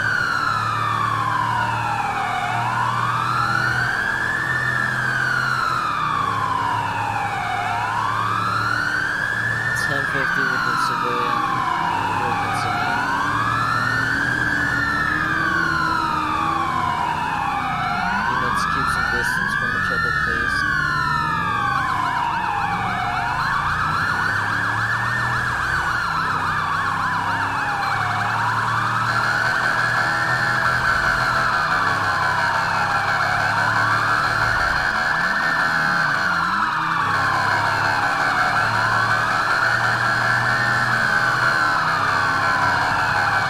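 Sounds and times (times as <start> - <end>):
police car siren wailing during a code 3 pursuit on Great Ocean Highway: 0.0 - 43.4.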